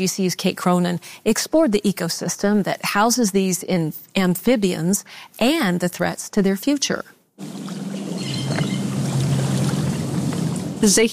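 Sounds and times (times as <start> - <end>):
speech: 0.0 - 7.8, 10.8 - 11.1
person wading through waist-deep swamp water: 7.4 - 10.9.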